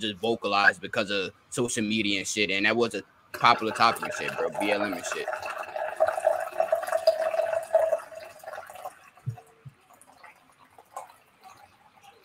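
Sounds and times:
speech: 0:00.0 - 0:05.6
drink poured into a glass: 0:03.4 - 0:12.2.

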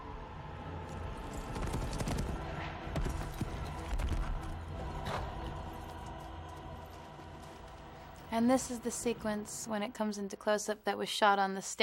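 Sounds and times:
horse carrying a rider galloping with hooves clip-clopping: 0:00.9 - 0:08.3
speech: 0:08.4 - 0:11.8.

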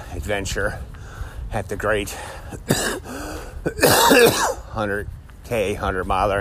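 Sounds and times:
speech: 0:00.2 - 0:06.3
person coughing from dirt and dust picked up during a 100-mile run: 0:02.6 - 0:03.1, 0:03.7 - 0:04.6.

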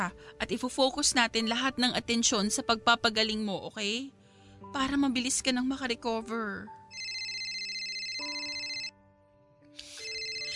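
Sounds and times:
speech: 0:00.0 - 0:06.8
mobile phone ringing with an incoming call: 0:06.9 - 0:09.0, 0:09.8 - 0:10.5.

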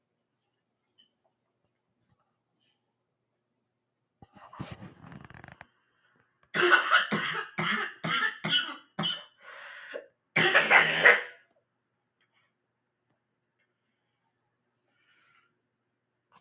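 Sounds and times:
person coughing: 0:06.6 - 0:09.4, 0:10.4 - 0:11.4.

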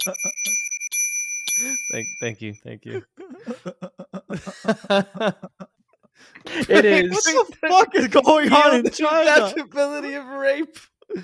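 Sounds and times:
speech: 0:00.0 - 0:00.7, 0:01.6 - 0:05.6, 0:06.2 - 0:11.2
small bell ringing: 0:00.0 - 0:02.6
laughter: 0:02.9 - 0:11.2.

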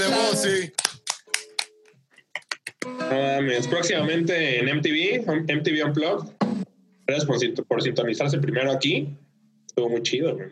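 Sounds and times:
speech: 0:00.0 - 0:00.8, 0:03.1 - 0:06.4, 0:07.1 - 0:09.2, 0:09.8 - 0:10.5
hand claps applauding an unplugged performance: 0:00.7 - 0:02.9.

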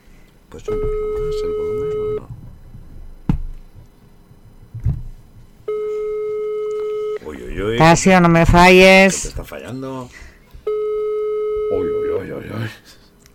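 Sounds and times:
faint noise: 0:00.0 - 0:13.3
speech: 0:00.5 - 0:01.7, 0:07.8 - 0:10.2
telephone ringback tone during a call: 0:00.7 - 0:02.2, 0:05.7 - 0:07.2, 0:10.7 - 0:12.4.

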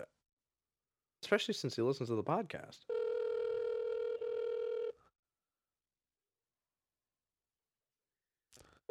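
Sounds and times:
speech: 0:01.3 - 0:03.0
outgoing phone call ringback tone: 0:02.9 - 0:05.0.

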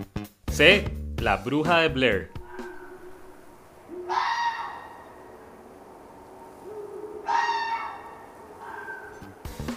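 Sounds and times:
speech: 0:00.0 - 0:02.4
red fox Vulpes vulpes screaming: 0:02.1 - 0:09.5.

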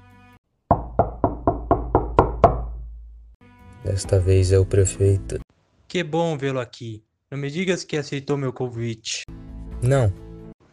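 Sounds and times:
firm knocks on the door of a house: 0:00.7 - 0:02.9
speech: 0:04.0 - 0:10.2.

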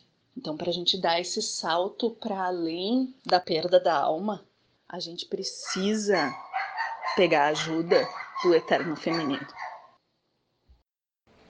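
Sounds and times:
speech: 0:00.4 - 0:06.5, 0:07.2 - 0:09.6
dog barking: 0:05.6 - 0:10.0.

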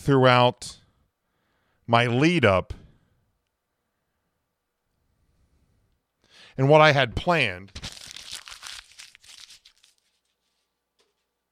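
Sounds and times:
speech: 0:00.0 - 0:00.8, 0:01.9 - 0:02.8, 0:06.6 - 0:07.9
paper being crumpled up by hand: 0:07.7 - 0:11.3.

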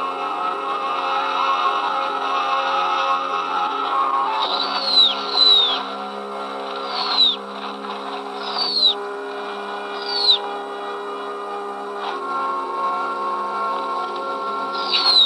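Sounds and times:
low droning hum: 0:00.2 - 0:15.2
owl giving short high descending cries while attacking a mouse: 0:04.4 - 0:06.0, 0:06.8 - 0:07.4, 0:08.4 - 0:09.0, 0:09.9 - 0:10.5, 0:14.8 - 0:15.2.

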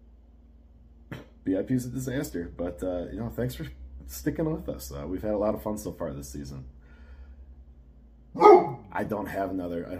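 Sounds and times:
speech: 0:01.5 - 0:06.8, 0:08.4 - 0:09.9
dog barking: 0:08.4 - 0:08.9.

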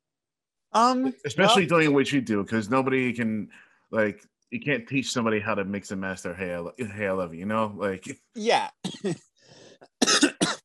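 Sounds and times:
speech: 0:00.7 - 0:09.6
person coughing: 0:08.8 - 0:09.2, 0:10.0 - 0:10.6.

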